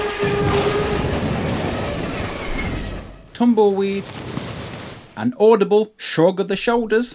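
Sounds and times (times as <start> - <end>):
shrill metallic squeal: 0.0 - 4.3
train wreck sound effect with rumbling clattering roar: 0.0 - 5.4
speech: 3.4 - 4.3, 5.2 - 7.1.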